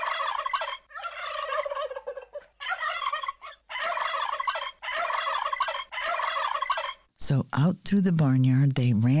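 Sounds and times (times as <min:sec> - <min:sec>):
turkeys gobbling: 0:00.0 - 0:07.1
speech: 0:07.3 - 0:09.1.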